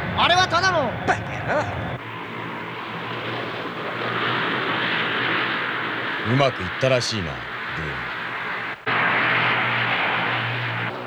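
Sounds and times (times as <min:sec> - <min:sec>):
laughter: 0:00.0 - 0:02.0, 0:06.2 - 0:08.2
civilian airplane engine roar flying overhead: 0:00.0 - 0:11.0
speech: 0:00.2 - 0:01.9, 0:06.3 - 0:08.1.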